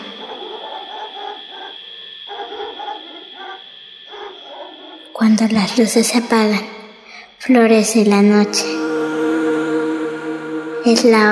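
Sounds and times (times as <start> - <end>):
distant dog barking: 0.0 - 5.1
steady hiss: 0.0 - 11.3
speech: 5.2 - 6.8, 7.4 - 8.8, 10.8 - 11.3.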